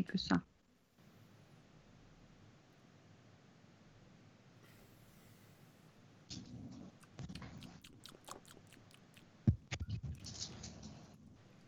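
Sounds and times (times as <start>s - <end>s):
speech: 0.0s - 0.5s
faint hum: 0.0s - 11.6s
wet lip smacking and chewing: 6.9s - 10.7s.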